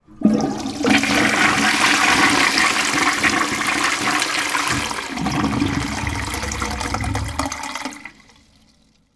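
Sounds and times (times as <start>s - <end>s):
household toilet flushing: 0.0s - 9.1s.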